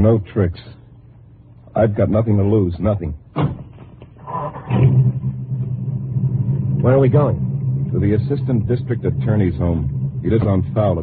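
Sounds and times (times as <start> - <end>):
speech: 0.0 - 0.8, 1.8 - 3.6, 6.8 - 11.0
car engine as the car drives off: 4.2 - 11.0.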